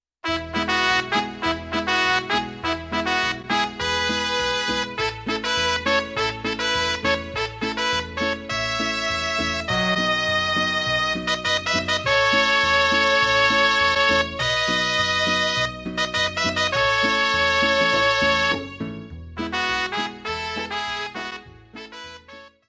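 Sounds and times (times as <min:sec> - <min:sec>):
mariachi music: 0:00.2 - 0:22.6.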